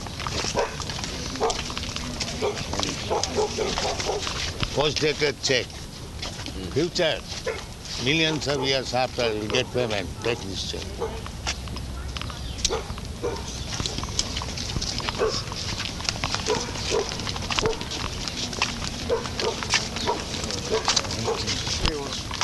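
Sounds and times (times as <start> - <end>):
indistinct voices: 0.0 - 22.4
dog barking aggressively: 0.4 - 1.7, 2.3 - 4.4, 7.4 - 8.9, 9.5 - 11.3, 12.6 - 14.1, 15.1 - 15.7, 16.4 - 18.0, 19.0 - 21.8
speech: 2.5 - 5.8, 6.6 - 11.3.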